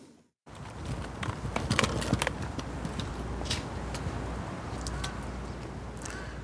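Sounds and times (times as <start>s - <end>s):
car-free city square ambience: 0.0s - 6.4s
hooves clopping: 0.5s - 5.9s.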